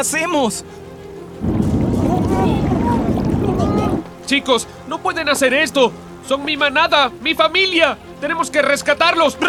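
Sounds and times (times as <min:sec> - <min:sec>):
speech: 0:00.0 - 0:01.6, 0:04.3 - 0:09.4
water surging into a cave: 0:01.3 - 0:04.8.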